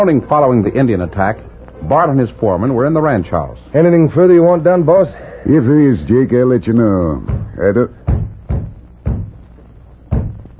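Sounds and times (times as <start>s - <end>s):
speech: 0.0s - 8.0s
dull knocks on a wooden door: 7.2s - 9.4s, 10.1s - 10.5s.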